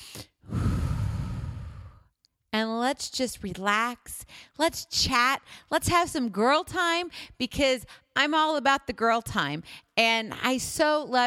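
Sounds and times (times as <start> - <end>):
deep breath: 0.0 - 2.1
speech: 2.6 - 11.2.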